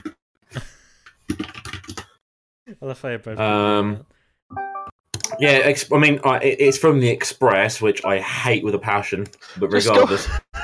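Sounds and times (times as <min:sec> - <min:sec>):
fingers typing on a computer keyboard: 0:01.3 - 0:02.2, 0:05.1 - 0:05.4
speech: 0:02.8 - 0:04.2, 0:05.4 - 0:10.4.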